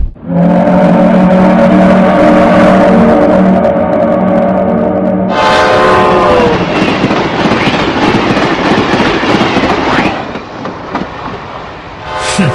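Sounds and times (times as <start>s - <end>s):
train horn blast at a railway station: 0.2s - 6.9s, 12.0s - 12.5s
train rumbling and clattering at a railway station: 5.3s - 12.0s.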